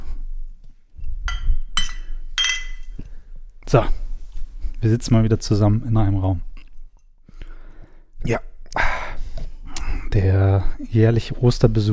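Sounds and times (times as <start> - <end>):
glasses clinking together in a toast: 1.3 - 3.0
speech: 3.7 - 4.0, 4.8 - 6.5, 8.2 - 8.5, 10.2 - 11.9.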